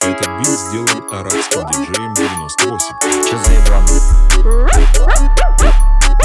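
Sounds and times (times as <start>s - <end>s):
speech: 0.1s - 5.9s
dog yapping and whining: 4.5s - 6.2s.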